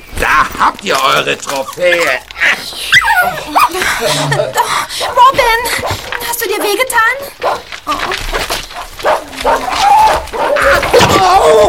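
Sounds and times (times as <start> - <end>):
speech: 0.3 - 8.4, 11.1 - 11.6
laughter: 1.5 - 5.9
small dog whining cries: 2.9 - 3.8, 9.1 - 11.6.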